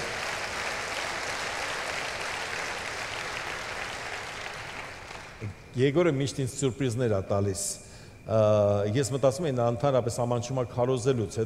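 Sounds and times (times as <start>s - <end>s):
audience applause: 0.0s - 5.4s
speech: 5.4s - 11.4s.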